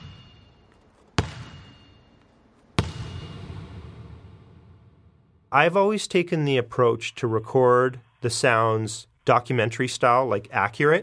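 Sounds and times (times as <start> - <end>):
bright ringing ping from a bouncing basketball: 0.0 - 3.7
basketball slammed hard on the floor beneath raised bleachers: 1.2 - 1.8, 2.8 - 5.0
speech: 5.5 - 11.0.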